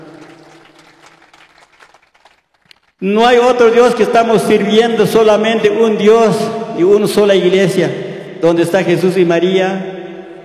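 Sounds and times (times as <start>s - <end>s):
audience applauding: 0.0s - 3.0s
speech: 3.0s - 9.9s.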